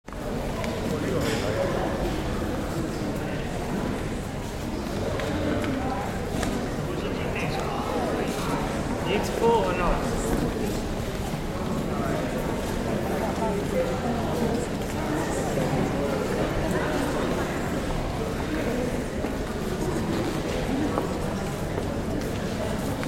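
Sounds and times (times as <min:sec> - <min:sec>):
lively crowd milling in a museum: 0:00.1 - 0:23.0.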